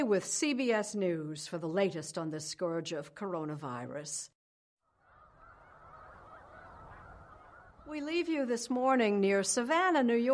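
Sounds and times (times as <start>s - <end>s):
speech: 0.0s - 4.4s, 7.9s - 10.3s
large flock of migrating snow geese honking near Savannah, New York, in the Finger Lakes: 5.0s - 8.0s.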